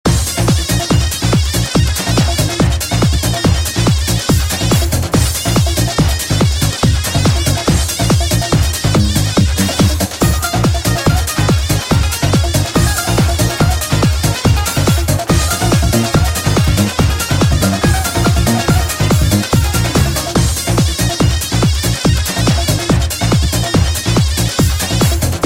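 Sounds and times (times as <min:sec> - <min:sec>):
davul drum beating for halay folk dance: 0:00.1 - 0:25.4
zurna playing halay folk music: 0:08.9 - 0:20.8.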